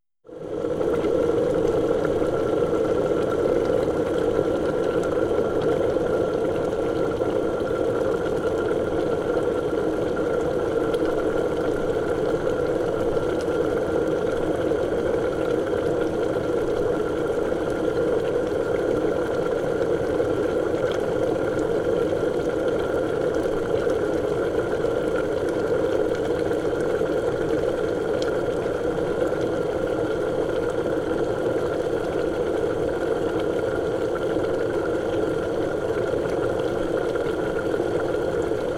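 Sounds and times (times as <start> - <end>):
scary bubbling ringtone: 0.3 - 38.7.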